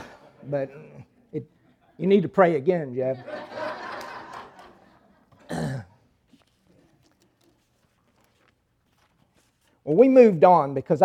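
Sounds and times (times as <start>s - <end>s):
laughter: 0.0s - 2.2s, 3.0s - 5.5s
speech: 0.5s - 3.4s, 9.9s - 11.0s
person clearing throat: 5.4s - 6.0s
person coughing: 5.4s - 6.0s.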